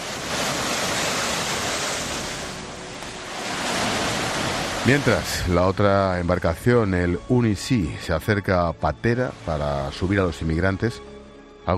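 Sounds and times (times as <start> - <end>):
ocean waves crashing: 0.0 - 10.8
speech: 4.8 - 11.1.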